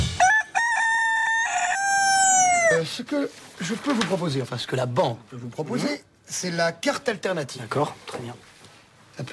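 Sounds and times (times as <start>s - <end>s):
rooster crowing: 0.1s - 2.9s
speech: 2.8s - 8.5s, 9.1s - 9.3s.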